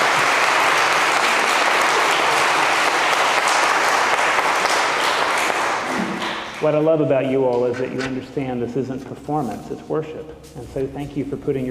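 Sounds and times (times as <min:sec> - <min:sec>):
congregation applauding: 0:00.0 - 0:07.8
speech: 0:06.6 - 0:11.7.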